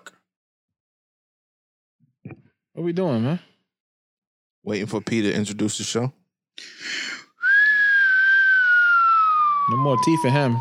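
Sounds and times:
speech: 2.8s - 3.5s, 4.6s - 7.0s, 9.7s - 10.5s
person whistling one long steady note: 7.4s - 10.5s.

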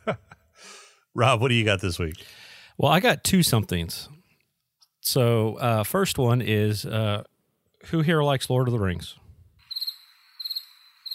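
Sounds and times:
speech: 0.0s - 4.1s, 5.0s - 9.2s
crickets chirping: 9.6s - 11.1s.

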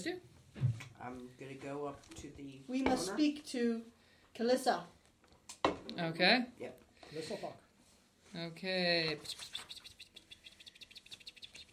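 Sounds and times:
speech: 0.0s - 5.0s, 5.6s - 7.6s, 8.3s - 9.8s
voice imitating shrill high-pitched bird chirps: 9.2s - 11.7s.

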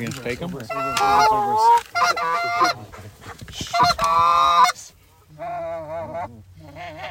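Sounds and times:
speech: 0.0s - 4.8s
geese honking: 0.4s - 7.0s.

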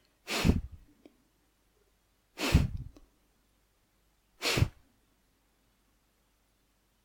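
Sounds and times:
sharp forceful exhalations during a guided breathing exercise: 0.2s - 0.8s, 2.4s - 3.0s, 4.4s - 4.8s.

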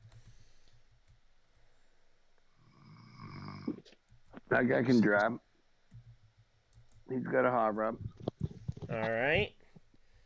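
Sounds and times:
person snoring: 2.7s - 3.8s
speech: 4.5s - 5.4s, 7.1s - 8.1s, 8.9s - 9.6s.

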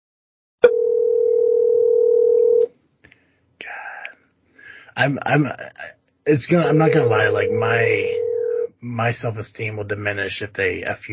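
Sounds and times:
telephone dial tone while calling a guest: 0.6s - 2.7s, 6.8s - 8.7s
speech: 5.0s - 8.2s, 8.8s - 11.1s.

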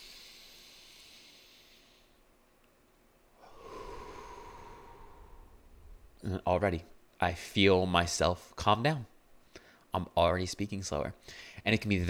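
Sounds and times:
person taking a deep breath in and out: 0.0s - 2.2s, 3.4s - 6.2s, 11.2s - 11.6s
speech: 6.2s - 9.1s, 9.9s - 12.0s.

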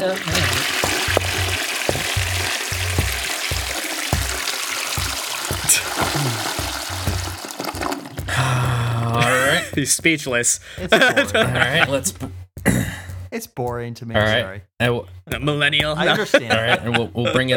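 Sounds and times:
speech: 0.0s - 0.6s, 9.8s - 12.4s, 13.4s - 17.5s
toilet flushing: 0.0s - 8.3s
laughter: 5.7s - 6.5s, 8.3s - 9.9s, 10.8s - 12.1s, 16.0s - 17.5s.

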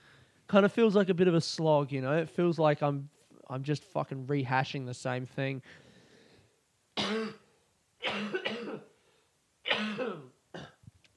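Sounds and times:
speech: 0.5s - 5.8s
harsh throaty coughs from one person: 7.0s - 9.0s, 9.7s - 10.8s.

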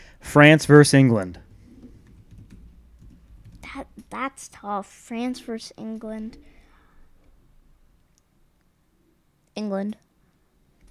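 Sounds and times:
speech: 0.4s - 1.4s, 4.1s - 6.6s, 9.6s - 10.0s
typing on a computer keyboard: 1.8s - 3.7s.

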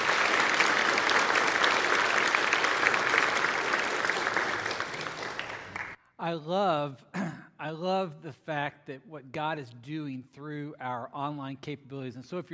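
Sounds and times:
large audience applauding: 0.0s - 6.0s
speech: 6.3s - 12.5s.

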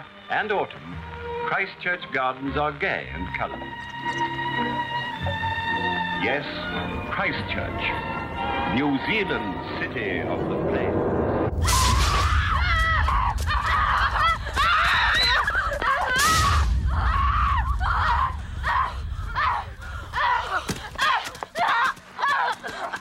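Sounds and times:
speech: 0.3s - 5.4s, 6.2s - 11.7s
two teenage girls screaming: 11.6s - 22.9s.

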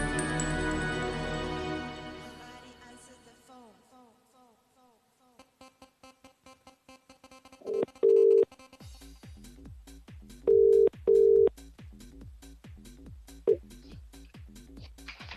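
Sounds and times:
busy rhythmic musical backdrop: 0.0s - 3.2s, 8.5s - 15.3s
short telephone dialing tones: 7.7s - 8.4s, 10.5s - 11.5s.

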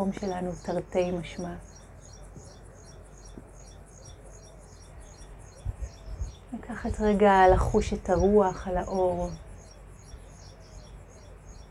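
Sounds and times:
speech: 0.0s - 1.8s, 6.6s - 9.4s
many birds chirping high in tall trees: 0.0s - 11.6s.

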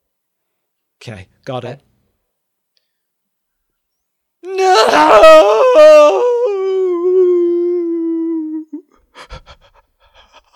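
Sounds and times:
speech: 1.0s - 1.9s, 4.9s - 6.2s
exaggerated anguished wail breaking in pitch like a yodel: 4.4s - 8.9s.

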